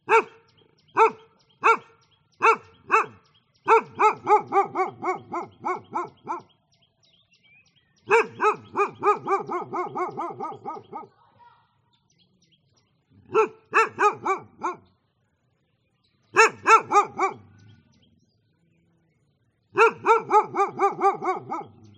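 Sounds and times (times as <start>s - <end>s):
dog barking in Vietnam: 0.0s - 6.5s, 8.1s - 11.2s, 13.2s - 14.9s, 16.4s - 17.6s, 19.8s - 21.9s
birds calling in Vietnam: 0.0s - 21.9s.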